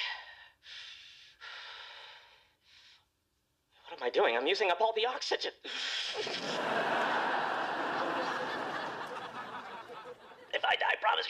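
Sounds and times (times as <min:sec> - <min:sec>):
deep slow breathing: 0:00.0 - 0:03.1, 0:05.6 - 0:06.5
speech: 0:04.0 - 0:07.0, 0:10.7 - 0:11.2
laughter: 0:06.1 - 0:10.6.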